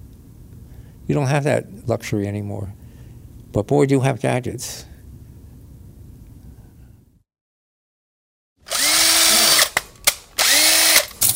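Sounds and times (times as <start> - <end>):
speech: 1.1 - 2.8, 3.5 - 4.9
power drill whirring: 8.6 - 11.2.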